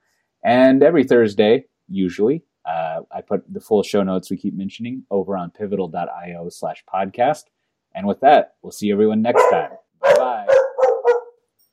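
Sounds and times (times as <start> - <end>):
speech: 0.4 - 10.6
dog bark: 9.3 - 11.4.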